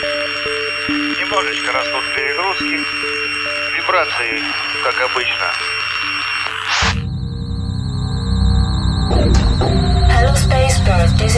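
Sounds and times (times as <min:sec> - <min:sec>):
electronic alarm tone: 0:00.0 - 0:11.3
speech: 0:00.9 - 0:03.2, 0:03.9 - 0:05.8, 0:10.6 - 0:11.3
burst of noise: 0:06.5 - 0:10.7.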